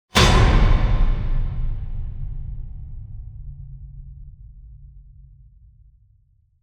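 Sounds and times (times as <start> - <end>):
impact hit: 0.1 - 4.8.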